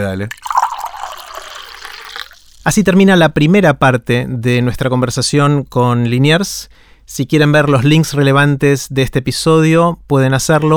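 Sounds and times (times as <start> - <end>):
speech: 0.0 - 0.6, 2.6 - 10.7
water being poured for drinking: 0.0 - 2.8.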